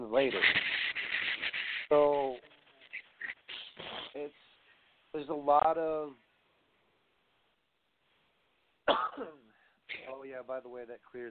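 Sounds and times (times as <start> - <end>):
speech: 0.1 - 0.8, 1.9 - 2.3, 5.3 - 6.2, 10.2 - 11.2
person with allergies coughing: 8.9 - 10.2.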